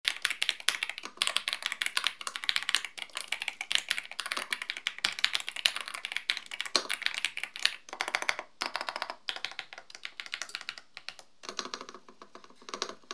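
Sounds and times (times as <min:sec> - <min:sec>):
Epomaker DynaTab 75 wireless mechanical keyboard: 0:00.1 - 0:13.1.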